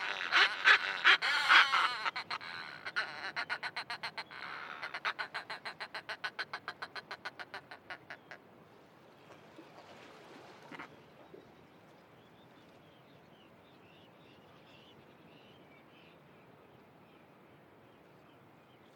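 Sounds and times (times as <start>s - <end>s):
Northern fulmar pairs cackling from cliff edge nests in the Inner Hebrides: 0.0s - 8.3s.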